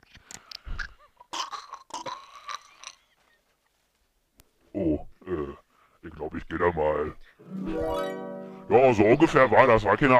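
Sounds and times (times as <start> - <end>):
chewing and crunching on sweets: 0.0 - 3.4
speech: 4.8 - 5.1, 6.2 - 10.1.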